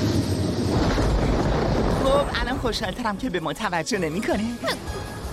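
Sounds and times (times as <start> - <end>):
helicopter flying overhead: 0.0 - 1.8
speech: 2.2 - 5.1.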